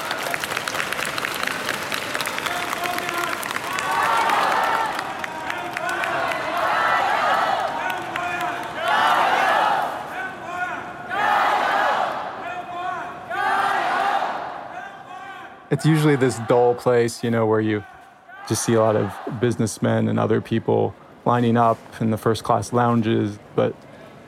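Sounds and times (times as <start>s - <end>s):
crowd clapping in an airport arrivals hall: 0.0s - 10.0s
large crowd cheering in an airport arrivals hall: 0.0s - 17.1s, 17.7s - 19.7s
speech: 15.8s - 17.9s, 18.5s - 24.2s.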